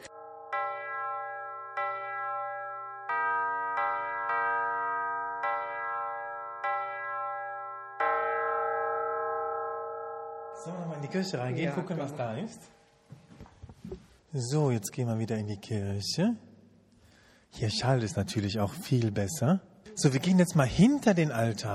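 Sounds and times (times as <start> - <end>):
church bells struck by hand in a melodic sequence in a church tower: 0.0 - 12.7
speech: 10.6 - 12.8, 14.3 - 16.5, 17.5 - 21.7.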